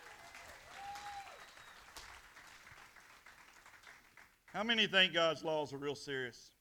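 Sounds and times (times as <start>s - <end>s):
church crowd applauding a band: 0.0s - 4.4s
speech: 4.6s - 6.5s.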